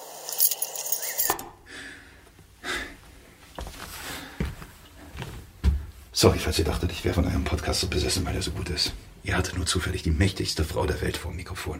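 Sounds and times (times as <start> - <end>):
bunch of keys jangling: 0.2 - 1.5
breathy sounds: 1.5 - 5.2
soft thumps: 4.4 - 6.0
speech: 6.2 - 11.7.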